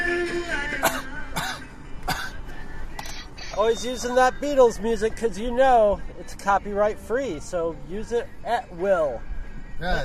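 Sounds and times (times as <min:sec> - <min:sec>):
faint tonal music-like lines: 0:00.0 - 0:10.0
person coughing: 0:00.8 - 0:02.4
speech: 0:03.6 - 0:10.0.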